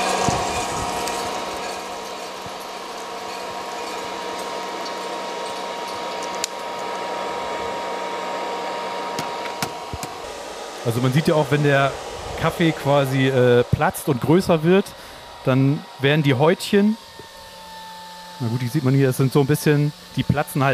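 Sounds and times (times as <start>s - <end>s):
coffee roaster cooling fan running: 0.0s - 20.7s
speech: 10.8s - 17.0s, 18.4s - 20.7s.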